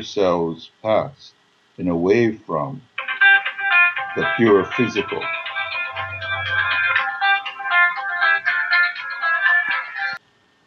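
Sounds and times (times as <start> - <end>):
speech: 0.0 - 2.9, 4.2 - 5.4
mobile phone ringing with a bright melodic electronic tune: 3.0 - 10.2.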